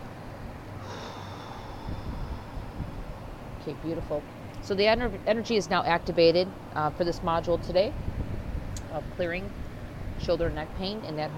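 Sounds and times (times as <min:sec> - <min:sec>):
slow deep breath during a guided breathing exercise: 0:00.8 - 0:03.4
speech: 0:03.6 - 0:08.1, 0:08.9 - 0:09.6, 0:10.2 - 0:11.3.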